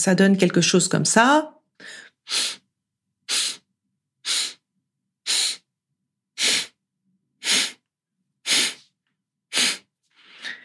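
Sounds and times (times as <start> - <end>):
speech: 0.0 - 2.6
slow nasal inhale and exhale: 1.8 - 2.7, 3.3 - 5.7, 6.4 - 6.8, 7.4 - 7.8, 8.4 - 8.9, 9.5 - 10.6.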